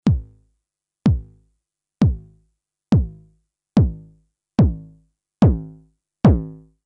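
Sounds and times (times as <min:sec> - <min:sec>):
Roland TR-909 bass drum with mod drive: 0:00.0 - 0:00.4, 0:01.1 - 0:01.4, 0:02.0 - 0:06.6.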